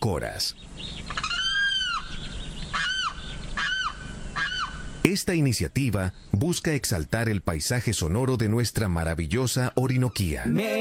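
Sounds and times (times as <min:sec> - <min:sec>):
speech: 0:00.0 - 0:01.3, 0:05.0 - 0:10.7
faint hiss: 0:00.0 - 0:10.7
limpkin wailing calls: 0:00.8 - 0:05.1.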